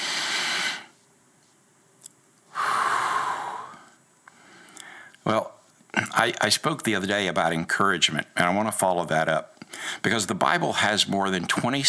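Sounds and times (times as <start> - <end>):
slow deep breathing in and out during a guided calming exercise: 0.0 - 1.0, 2.5 - 5.2, 9.6 - 10.1
speech: 6.2 - 11.8.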